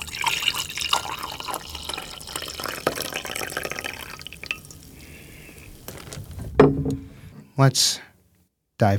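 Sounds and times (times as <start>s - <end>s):
coffee pouring into a mug: 0.0s - 6.4s
speech: 7.6s - 8.1s, 8.8s - 8.9s.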